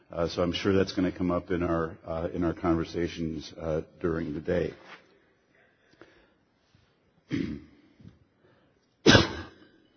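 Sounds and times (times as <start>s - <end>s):
faint noise: 0.0s - 9.9s
speech: 0.1s - 5.0s, 7.3s - 7.7s
person coughing: 7.3s - 7.8s, 9.0s - 9.8s.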